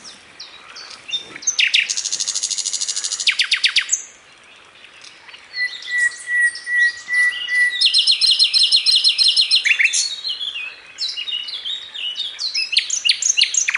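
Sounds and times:
bird song: 0:00.0 - 0:13.7.

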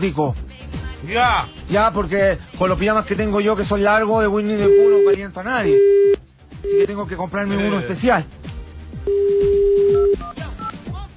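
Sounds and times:
speech: 0:00.0 - 0:00.4, 0:01.0 - 0:08.4
telephone tone while a number is dialed: 0:04.6 - 0:07.0, 0:09.1 - 0:10.8.

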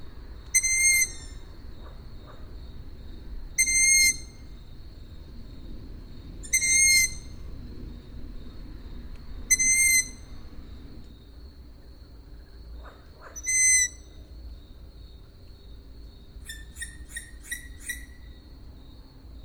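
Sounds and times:
owl whistled calls at Židlochovice: 0:00.5 - 0:01.5, 0:03.6 - 0:04.5, 0:06.4 - 0:07.4, 0:09.5 - 0:10.3, 0:13.4 - 0:14.1.

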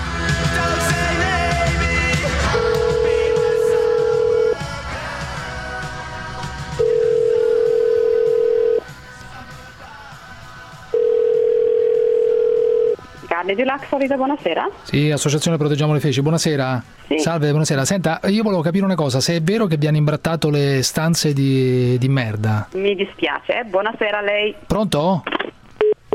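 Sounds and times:
noise: 0:00.0 - 0:26.1
long steady electronic telephone line beeps during a call to a hotel: 0:02.6 - 0:04.6, 0:06.8 - 0:08.8, 0:11.0 - 0:13.0, 0:25.8 - 0:26.1
speech: 0:13.5 - 0:25.4.

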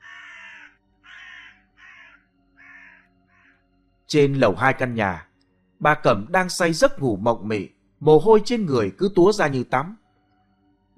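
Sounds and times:
crow cawing: 0:00.0 - 0:03.6
speech: 0:04.1 - 0:10.0.

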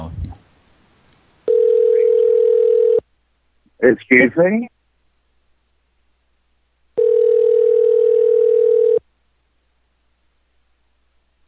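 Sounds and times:
faint noise: 0:00.0 - 0:11.4
ringback tone of an outgoing phone call: 0:01.5 - 0:03.0, 0:07.0 - 0:09.0
speech: 0:03.8 - 0:04.7.

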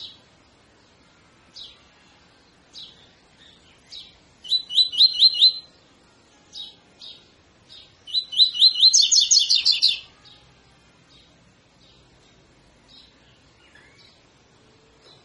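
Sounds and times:
double-collared seedeater singing a tutor song: 0:04.5 - 0:05.7, 0:08.1 - 0:10.0.

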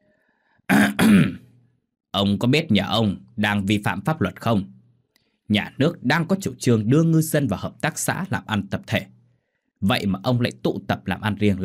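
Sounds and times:
man clearing his throat in an intimidating way: 0:00.7 - 0:01.6
speech: 0:01.1 - 0:01.4, 0:02.1 - 0:04.8, 0:05.5 - 0:09.2, 0:09.8 - 0:11.6.

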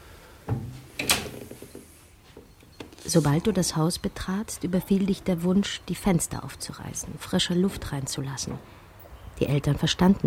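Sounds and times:
door being opened: 0:00.5 - 0:03.4
door creaking and rattling: 0:00.5 - 0:03.7, 0:07.6 - 0:09.3
speech: 0:03.1 - 0:08.8, 0:09.4 - 0:10.2.

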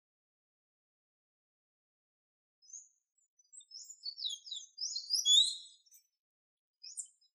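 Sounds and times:
golden-chevroned tanager singing thin high twittering of squeaky notes: 0:03.5 - 0:06.0.

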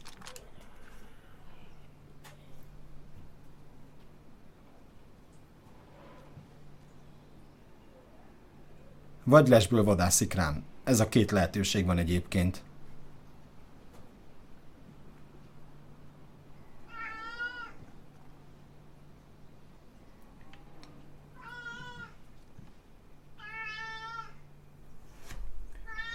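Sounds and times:
faint low hum: 0:00.0 - 0:26.1
speech: 0:09.3 - 0:12.7
cat meowing: 0:16.8 - 0:17.8, 0:21.4 - 0:22.2, 0:23.4 - 0:24.4, 0:25.8 - 0:26.1.

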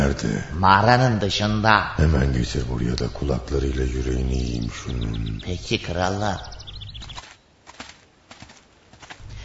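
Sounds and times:
speech: 0:00.1 - 0:06.5
donkey hooves clip-clopping in a slow walk: 0:06.9 - 0:09.4.

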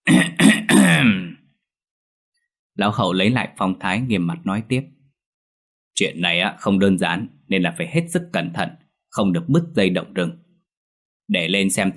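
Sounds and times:
old man clearing his throat: 0:00.0 - 0:01.4
speech: 0:02.8 - 0:05.0, 0:06.0 - 0:10.4, 0:11.3 - 0:11.9.

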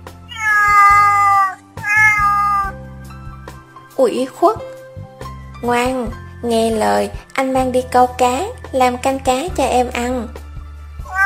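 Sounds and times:
cat meowing: 0:00.3 - 0:02.8, 0:11.0 - 0:11.2
speech: 0:04.0 - 0:04.8, 0:05.6 - 0:10.4.

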